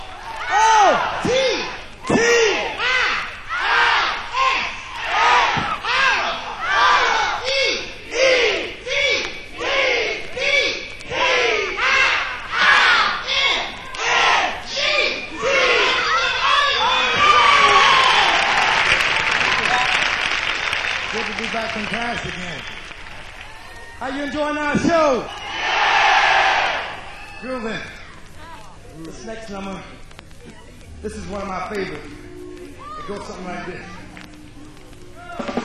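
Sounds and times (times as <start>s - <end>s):
live music show audience shouting and cheering: 0.0s - 28.8s, 31.1s - 35.6s
live music show audience applause welcoming a performer: 17.2s - 24.2s.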